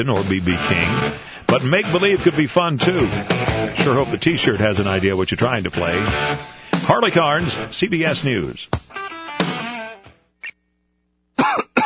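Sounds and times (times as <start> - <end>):
speech: 0.0 - 9.6
man coughing harshly: 11.4 - 11.8.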